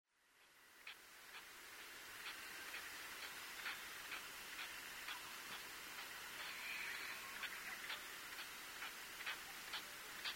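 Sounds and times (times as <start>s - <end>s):
steady hiss of background noise: 0.1s - 10.3s
Latham's snipe calls: 2.2s - 10.3s.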